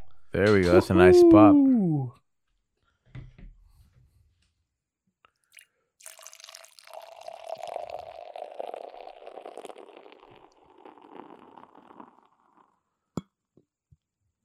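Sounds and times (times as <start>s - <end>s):
speech: 0.3s - 2.2s
stout beer pouring into a glass: 5.5s - 12.9s.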